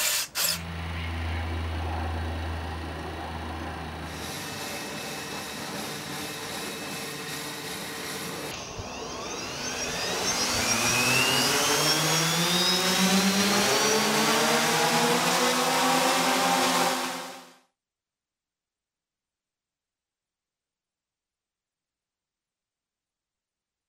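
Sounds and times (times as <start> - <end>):
automated sideways drone window cleaner: 0.1 - 17.6.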